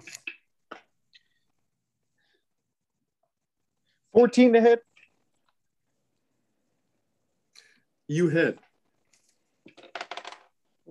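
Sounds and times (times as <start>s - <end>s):
speech: 4.2s - 4.9s, 8.1s - 8.7s
dice rolling in a hard dice tray: 9.7s - 10.6s.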